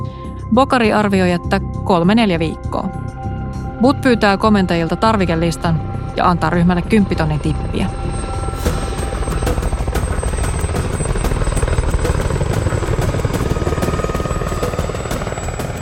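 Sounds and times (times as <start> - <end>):
speech: 0.5 - 8.3
deep helicopter engine roar: 2.6 - 15.8
helicopter rotor blades chopping while landing: 6.8 - 15.8.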